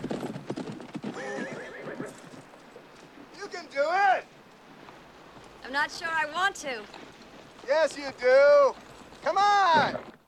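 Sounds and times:
horse hooves clattering in quick uneven steps: 0:00.0 - 0:10.2
horse's loud wavering whinny: 0:00.4 - 0:02.5
speech: 0:05.8 - 0:07.1, 0:07.7 - 0:10.1.

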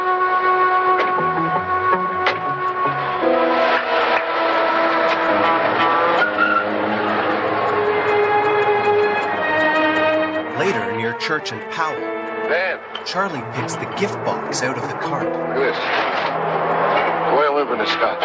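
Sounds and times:
car engine pulling away: 0:00.8 - 0:10.6, 0:13.4 - 0:18.2
speech: 0:11.3 - 0:18.2.

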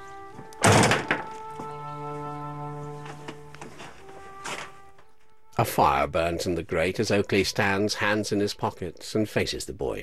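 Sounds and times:
steady tonal background: 0:00.0 - 0:10.0
heavy door being shut: 0:00.6 - 0:01.3
speech: 0:05.6 - 0:10.0.

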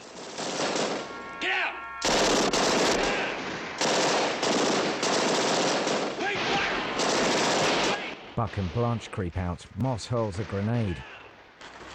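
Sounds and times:
Tommy guns firing long rapid bursts at an armored police car: 0:00.0 - 0:01.1, 0:02.0 - 0:08.2
short tonal whines: 0:01.0 - 0:02.3
speech: 0:08.4 - 0:11.2.

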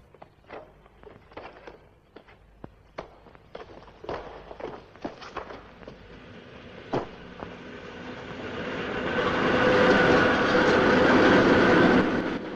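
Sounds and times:
trains rattling past at a railway junction: 0:05.6 - 0:12.5.

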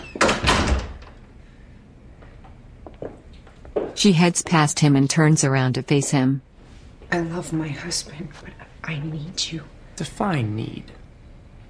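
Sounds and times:
door swinging shut with a firm thud and rattle: 0:00.0 - 0:01.2
speech: 0:04.0 - 0:06.5, 0:07.1 - 0:11.0.

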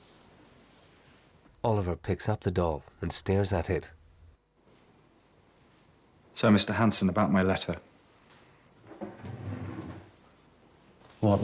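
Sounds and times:
speech: 0:01.6 - 0:04.0, 0:06.4 - 0:07.9, 0:11.2 - 0:11.4
desk drawer sliding open: 0:08.9 - 0:10.1.

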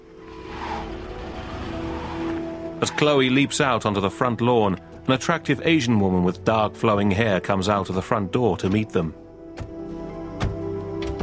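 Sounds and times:
heavily protected car engine droning as it turns around and parks in a quiet suburban cul-de-sac: 0:00.0 - 0:06.5
speech: 0:02.8 - 0:09.7.

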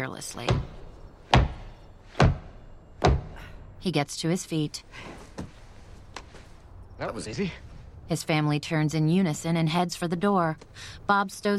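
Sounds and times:
speech: 0:00.0 - 0:00.8, 0:03.8 - 0:05.6, 0:07.0 - 0:11.5
mallet striking braking blocks under an RV's rear tire in a dirt RV park lot: 0:00.4 - 0:03.4.

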